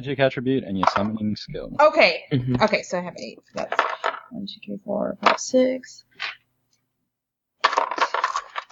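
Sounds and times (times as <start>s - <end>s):
speech: 0.0s - 6.1s
handful of eight dice clattering on a hard desk: 3.6s - 4.3s, 7.6s - 8.7s.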